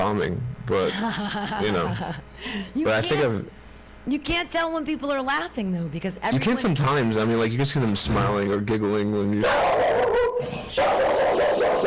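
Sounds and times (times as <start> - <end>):
speech: 0.0 - 11.4
dog barking and yelping: 9.4 - 11.8.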